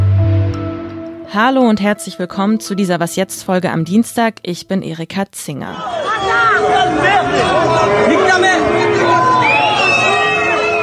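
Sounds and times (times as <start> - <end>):
speech: 1.3 - 9.3
aggressive protest crowd shouting slogans: 5.7 - 10.8.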